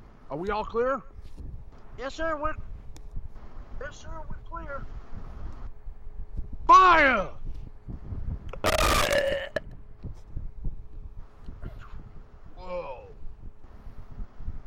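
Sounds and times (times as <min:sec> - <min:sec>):
speech: 0:00.3 - 0:01.4, 0:02.0 - 0:02.7, 0:03.8 - 0:05.0, 0:06.7 - 0:07.6
loud fart: 0:08.5 - 0:09.7.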